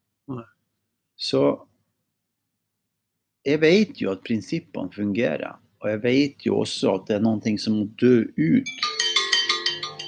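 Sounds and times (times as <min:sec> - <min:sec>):
speech: 0:00.3 - 0:00.6, 0:01.2 - 0:01.7, 0:03.4 - 0:08.9
phone ringtone of bright electronic tones: 0:08.7 - 0:10.0.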